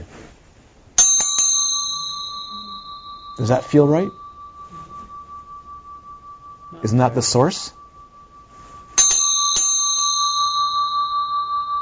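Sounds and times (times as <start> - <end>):
small bell ringing: 1.0 - 11.8
speech: 3.4 - 4.2, 6.8 - 7.8.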